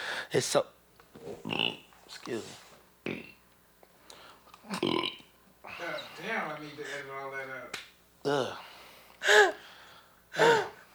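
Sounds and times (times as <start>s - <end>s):
speech: 0.3s - 3.4s, 4.7s - 5.2s, 5.8s - 9.6s, 10.4s - 10.8s
man belching: 3.0s - 3.4s, 4.7s - 5.2s.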